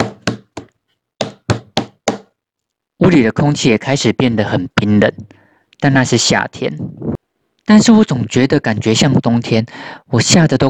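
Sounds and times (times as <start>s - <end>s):
hands pounding frantically on a door: 0.0s - 2.3s
speech: 3.0s - 10.6s.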